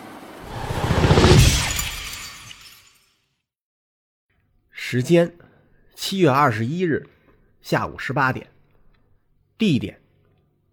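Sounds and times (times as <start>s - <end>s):
plane crashing into a mountain: 0.0s - 2.7s
shattering and breaking debris: 0.5s - 3.1s
speech: 4.9s - 8.5s, 9.6s - 10.0s.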